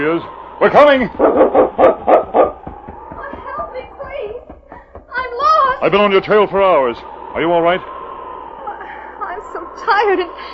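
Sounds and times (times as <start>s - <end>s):
speech: 0.0s - 2.4s, 5.8s - 8.0s, 9.8s - 10.5s
dog barking loudly: 1.2s - 2.7s.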